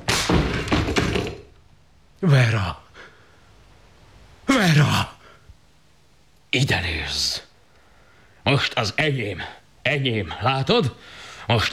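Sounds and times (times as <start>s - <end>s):
door being banged on and forced open: 0.0s - 1.5s
speech: 2.2s - 2.8s, 6.5s - 7.4s, 8.5s - 11.7s.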